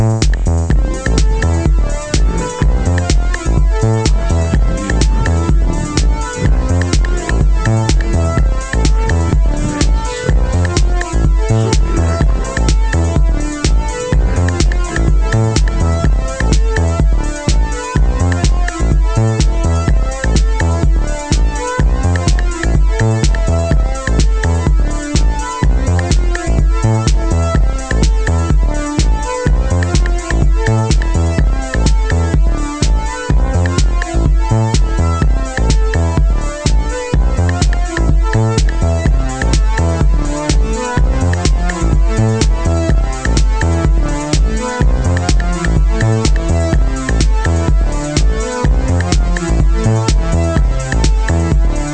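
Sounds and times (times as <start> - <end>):
electronic organ playing house music: 0.1 - 51.9.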